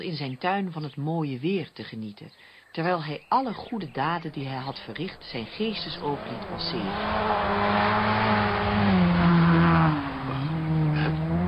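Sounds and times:
speech: 0:00.0 - 0:09.0
noisy open car engine roaring while driving past: 0:04.3 - 0:11.4.

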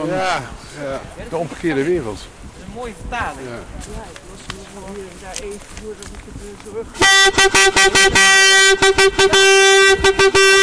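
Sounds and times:
speech: 0:00.0 - 0:10.6
horn tooting loud short buzzing blasts: 0:07.0 - 0:10.6.

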